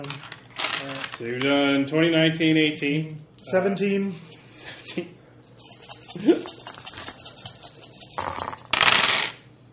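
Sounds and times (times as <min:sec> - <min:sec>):
dice clattering and tumbling across a tabletop: 0:00.0 - 0:01.5, 0:08.2 - 0:09.4
speech: 0:00.0 - 0:05.2.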